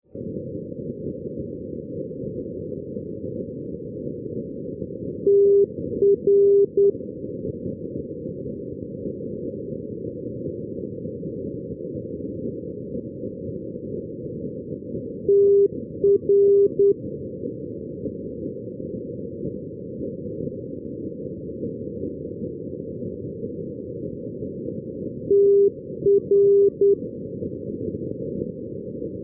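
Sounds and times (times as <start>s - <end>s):
non-directional radio beacon morse tone at Tirana Rinas: 5.3s - 7.0s, 15.3s - 17.0s, 25.3s - 27.0s.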